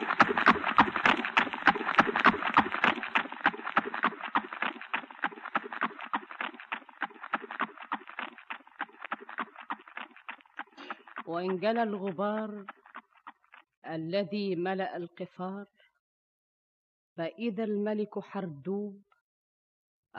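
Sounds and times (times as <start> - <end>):
clip-clop of hoofbeats of horses carrying horsemen: 0.0 - 13.7
speech: 11.3 - 12.8, 13.9 - 15.8, 17.2 - 19.1.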